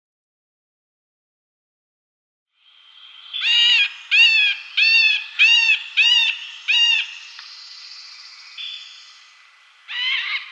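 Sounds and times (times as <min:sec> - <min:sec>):
Middle spotted woodpecker display call: 0:03.2 - 0:10.5.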